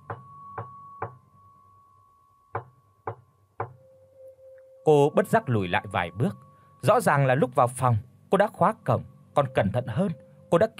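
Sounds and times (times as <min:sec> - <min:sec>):
faint steady hum: 0:00.0 - 0:10.7
sharp knocking on a door: 0:02.6 - 0:03.8
speech: 0:04.8 - 0:10.7.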